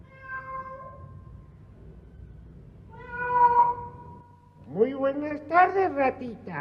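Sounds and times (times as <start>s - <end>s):
cat meowing: 0.0s - 1.0s, 2.9s - 4.3s
speech: 5.0s - 6.5s.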